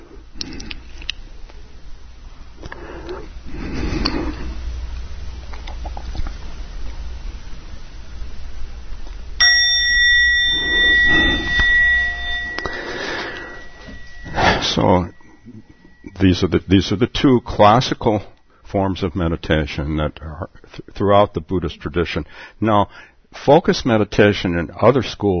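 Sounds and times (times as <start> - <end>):
meditation bell struck and ringing: 9.4 - 18.2
speech: 14.8 - 15.1, 16.3 - 25.3.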